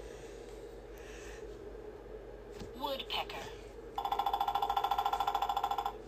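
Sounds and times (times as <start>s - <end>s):
woodpecker hammering on a tree to find food: 4.0s - 6.0s.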